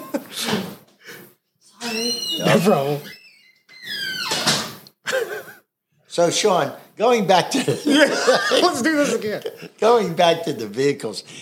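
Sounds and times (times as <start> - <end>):
laughter: 0.0 - 0.7, 5.0 - 5.7, 7.5 - 9.8
squeaky door hinge creaking open: 1.8 - 4.8
speech: 2.5 - 3.2, 6.2 - 11.4.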